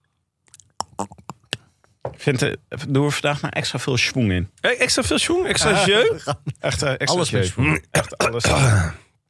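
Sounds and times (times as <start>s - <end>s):
person sipping water: 0.4s - 2.0s
person swallowing: 0.5s - 1.7s
speech: 1.0s - 1.2s, 2.1s - 9.0s.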